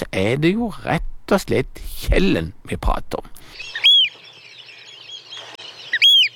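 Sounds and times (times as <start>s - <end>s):
speech: 0.1s - 3.8s
faint overlapping oystercatcher piping: 3.4s - 6.3s
Eurasian oystercatcher giving loud piercing whistled calls: 3.6s - 6.3s.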